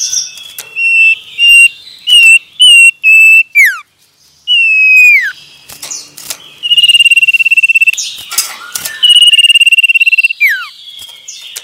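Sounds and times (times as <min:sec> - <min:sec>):
male common iora song of whistles and slurs: 0:00.0 - 0:03.8, 0:04.5 - 0:05.4, 0:06.6 - 0:11.1.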